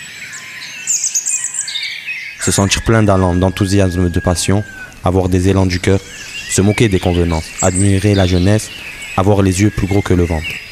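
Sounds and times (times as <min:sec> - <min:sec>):
birds singing in the early morning: 0:00.0 - 0:10.6
speech: 0:02.4 - 0:10.6.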